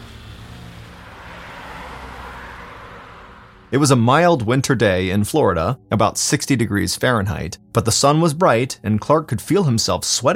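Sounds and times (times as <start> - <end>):
car engine roaring while accelerating out of a parking lot: 0.0 - 4.8
rising broadband road noise: 0.0 - 5.8
speech: 3.7 - 10.3.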